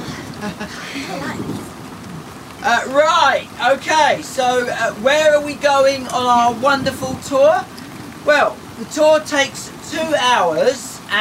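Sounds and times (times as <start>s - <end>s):
faint low thunder rumble: 0.0s - 11.1s
steady rain: 0.0s - 11.1s
speech: 0.4s - 1.8s, 2.6s - 11.1s.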